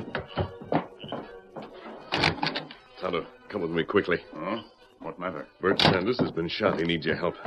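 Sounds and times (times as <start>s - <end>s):
jail door being opened: 0.0s - 2.8s, 5.7s - 6.4s
wooden thunks and clicks from jail door latch and frame: 2.1s - 2.8s, 5.7s - 6.1s
speech: 3.0s - 7.4s.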